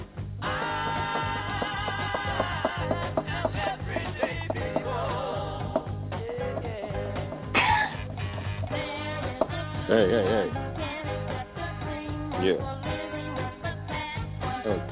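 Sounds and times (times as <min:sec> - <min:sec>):
music with a thumping repeating low beat: 0:00.0 - 0:14.8
single sharp cough: 0:07.6 - 0:08.0
speech: 0:09.9 - 0:10.6.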